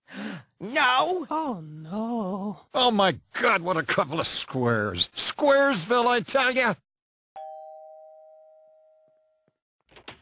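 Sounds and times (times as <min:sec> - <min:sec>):
speech: 0:00.6 - 0:06.8
doorbell chime: 0:07.4 - 0:09.5.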